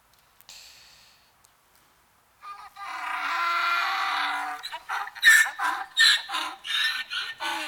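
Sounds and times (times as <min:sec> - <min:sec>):
man imitating a donkey braying: 0:02.4 - 0:07.6.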